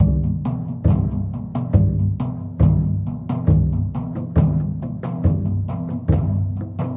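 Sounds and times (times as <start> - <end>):
drums at 138 bpm: 0.0 - 6.9.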